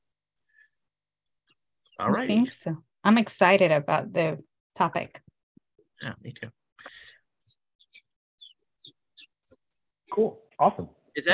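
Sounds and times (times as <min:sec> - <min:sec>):
small birds chirping: 0:01.4 - 0:02.8, 0:05.8 - 0:10.6
speech: 0:02.0 - 0:05.3, 0:06.0 - 0:07.0, 0:10.1 - 0:11.3.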